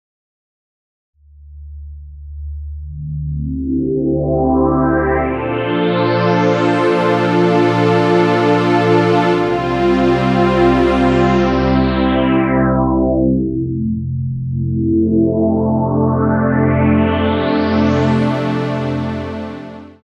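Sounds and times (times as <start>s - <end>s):
synth pad from a software sampler: 3.4s - 13.5s, 14.7s - 20.0s.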